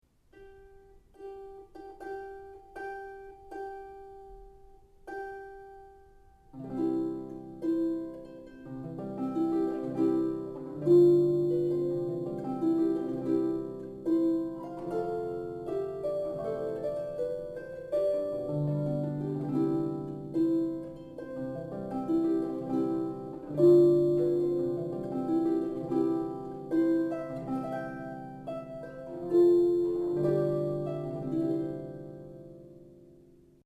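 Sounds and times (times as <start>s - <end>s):
solo harp: 0.3s - 33.6s.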